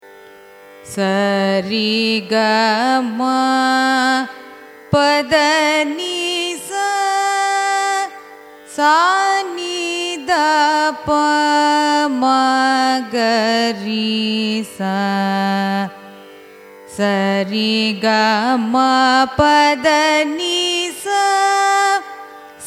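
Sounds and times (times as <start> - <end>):
Carnatic music raga ascending and descending scale: 0.0 - 22.6.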